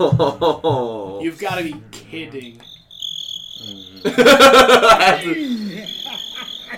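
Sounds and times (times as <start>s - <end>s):
laughter: 0.0s - 1.2s, 3.6s - 6.7s
speech: 0.0s - 2.7s, 3.6s - 6.0s
crickets chirping: 1.3s - 6.7s
thin steady trill: 1.3s - 6.7s.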